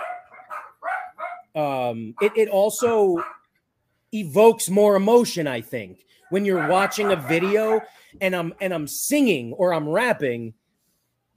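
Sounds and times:
dogs barking: 0.0s - 1.6s, 2.2s - 3.5s, 6.2s - 8.0s
speech: 1.6s - 3.4s, 4.1s - 10.6s.

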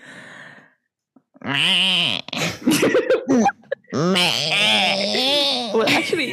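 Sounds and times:
speech: 1.5s - 5.2s
laughter: 2.6s - 6.3s
person imitating a goat or sheep bleat: 3.9s - 5.9s.

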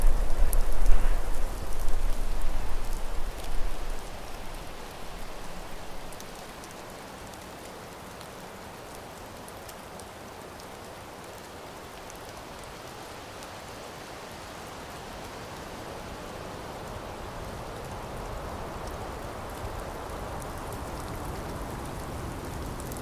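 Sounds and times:
low rumble: 0.0s - 6.1s
steady dense rain: 0.0s - 23.0s.

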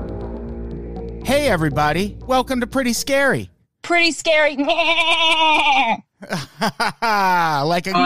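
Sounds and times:
speech: 1.3s - 8.0s
person imitating a goat bleating: 4.6s - 6.0s.

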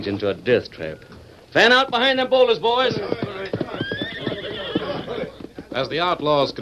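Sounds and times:
speech: 0.0s - 3.3s, 5.8s - 6.6s
horses whinnying while stuck knee-deep in quicksand: 2.7s - 5.9s.

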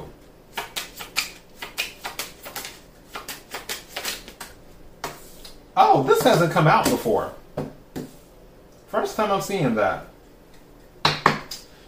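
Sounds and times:
tarot cards shuffled and drawn from a deck: 0.6s - 5.6s
speech: 5.8s - 7.4s, 8.9s - 10.1s.

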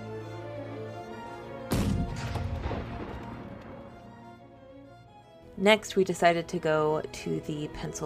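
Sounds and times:
cannon shot during artillery demonstration: 1.7s - 4.2s
speech: 5.6s - 8.0s.

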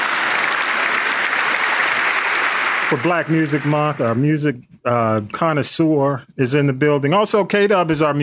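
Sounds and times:
audience applause: 0.0s - 4.2s
speech: 2.9s - 8.2s.

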